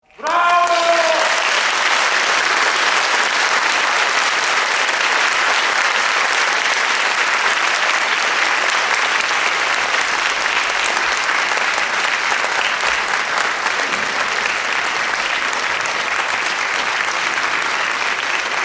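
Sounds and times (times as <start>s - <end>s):
person shouting bravo: 0.1s - 1.4s
clapping: 0.1s - 18.6s.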